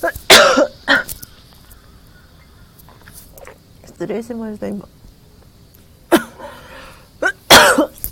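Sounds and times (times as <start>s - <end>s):
person coughing from coffee caught in the throat: 0.0s - 1.1s, 6.1s - 6.4s, 7.2s - 8.0s
speech: 4.0s - 5.0s.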